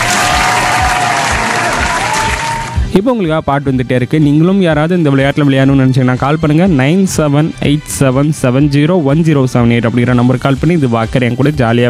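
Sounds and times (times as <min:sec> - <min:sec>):
crowd applause for a player in a game: 0:00.0 - 0:02.8
speech: 0:03.0 - 0:11.8.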